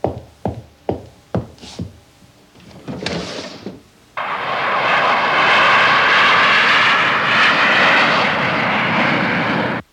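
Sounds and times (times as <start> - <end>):
airplane engine roaring overhead: 2.6 - 9.9.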